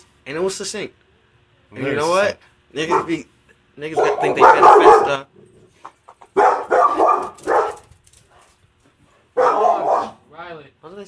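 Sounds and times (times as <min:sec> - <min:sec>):
speech: 0:00.2 - 0:01.0, 0:01.7 - 0:05.5, 0:10.5 - 0:11.0
dogs barking at passerby by fence: 0:02.8 - 0:03.2, 0:03.9 - 0:05.2, 0:06.3 - 0:08.5, 0:09.1 - 0:10.2.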